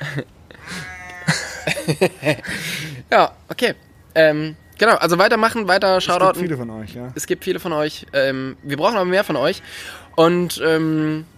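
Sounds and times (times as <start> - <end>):
speech: 0.2 - 0.4, 1.9 - 11.3
sheep bleating: 0.6 - 1.5
laughter: 1.3 - 2.8.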